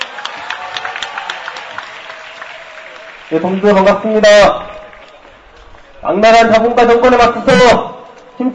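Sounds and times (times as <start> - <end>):
audience crowd clapping: 0.0 - 6.6
speech: 3.3 - 4.6, 6.1 - 8.5.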